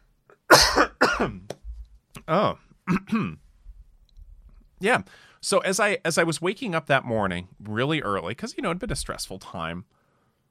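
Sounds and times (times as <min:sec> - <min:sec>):
harsh raspy coughing with trailing wheeze: 0:00.5 - 0:01.4, 0:02.9 - 0:03.4
speech: 0:01.2 - 0:01.5, 0:02.3 - 0:03.4, 0:04.8 - 0:10.0.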